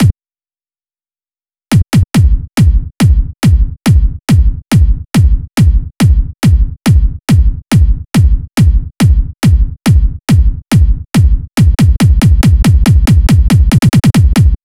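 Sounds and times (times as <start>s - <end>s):
kick drum at 140 BPM: 1.7s - 14.6s.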